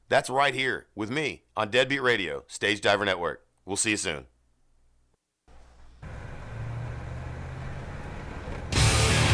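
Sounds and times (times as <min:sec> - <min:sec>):
speech: 0:00.1 - 0:04.3
large vehicle engine rumbling: 0:05.5 - 0:09.1
bus striking a person with a loud crashing impact: 0:06.0 - 0:09.2.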